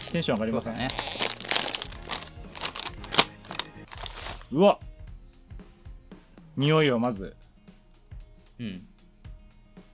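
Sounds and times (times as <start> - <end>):
crinkly plastic bag of spicy potato chips rustling: 0.0 - 4.5
speech: 0.1 - 1.3, 4.5 - 4.9, 6.6 - 7.4, 8.6 - 8.9
sharp crunch: 0.9 - 4.4.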